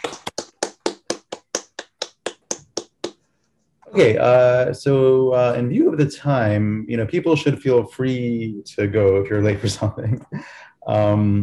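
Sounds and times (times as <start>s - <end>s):
steady hand claps of one person applauding: 0.0s - 3.2s
speech: 3.9s - 11.4s.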